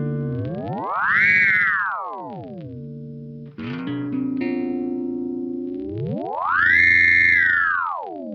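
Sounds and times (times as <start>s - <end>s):
ring modulated synth tone: 0.1s - 3.3s, 4.9s - 8.3s.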